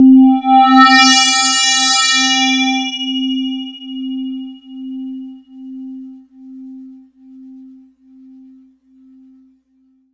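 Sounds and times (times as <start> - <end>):
Casio VZ-10M synthesizer bright phase note C4: 0.0 - 4.2.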